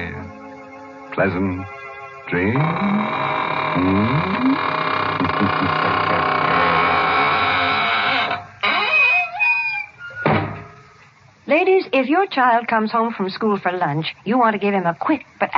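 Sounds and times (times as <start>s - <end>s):
steady hum: 0.0s - 15.5s
speech: 1.2s - 6.2s, 11.9s - 15.5s
squeaking door closing: 2.4s - 11.0s.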